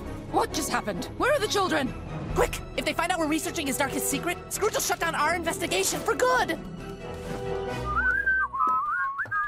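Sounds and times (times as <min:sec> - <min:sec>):
speech: 0:00.4 - 0:06.7
person whistling a casual tune: 0:07.7 - 0:09.4.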